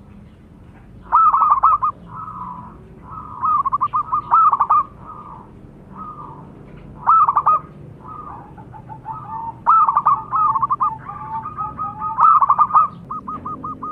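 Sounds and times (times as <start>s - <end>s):
zebra dove cooing vigorously: 0.9s - 13.9s.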